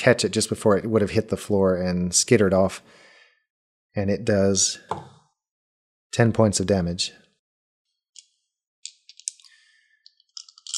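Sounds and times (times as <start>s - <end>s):
speech: 0.0s - 3.0s, 4.0s - 5.1s, 6.1s - 7.2s
handful of dice rattling and rolling: 8.9s - 9.5s, 10.4s - 10.7s.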